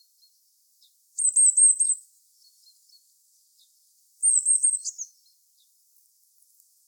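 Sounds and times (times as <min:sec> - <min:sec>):
Eurasian blue tit soft calls: 0:00.0 - 0:06.5
Eurasian blue tit Cyanistes caeruleus trilling: 0:01.2 - 0:02.0, 0:04.2 - 0:05.3.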